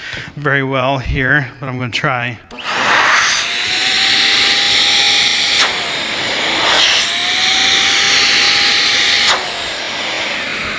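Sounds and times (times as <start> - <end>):
speech: 0.4 - 2.6
vacuum cleaner motor whine winding up with outlet blocked: 2.5 - 10.7.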